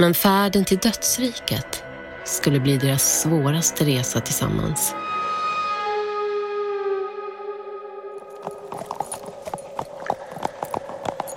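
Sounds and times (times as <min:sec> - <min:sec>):
speech: 0:00.0 - 0:05.2
sustained tonal drone: 0:00.8 - 0:09.0
horse hooves clip-clopping with echo: 0:08.2 - 0:11.3.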